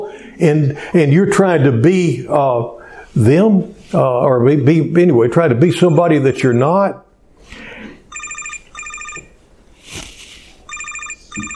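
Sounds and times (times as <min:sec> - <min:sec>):
speech: 0:00.4 - 0:07.7
cell phone ringing with a trilling electronic tone: 0:08.1 - 0:09.4, 0:10.7 - 0:11.5.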